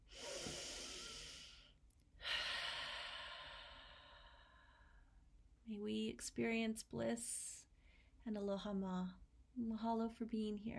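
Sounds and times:
group inhaling together: 0.0 - 5.0
speech: 5.7 - 7.6, 8.2 - 10.7.

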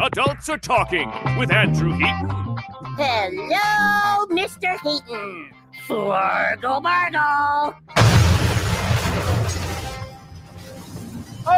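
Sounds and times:
speech: 0.1 - 2.4, 3.0 - 8.2
loud explosion with rumbling crackling decay: 8.0 - 10.5.

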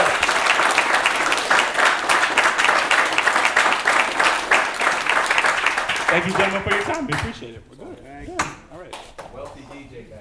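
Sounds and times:
audience applauding at the close of a live onstage conversation: 0.0 - 7.6
speech: 6.2 - 7.8.

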